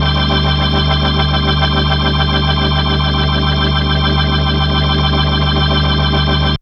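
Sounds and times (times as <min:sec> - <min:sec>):
organ chord: 0:00.0 - 0:06.6.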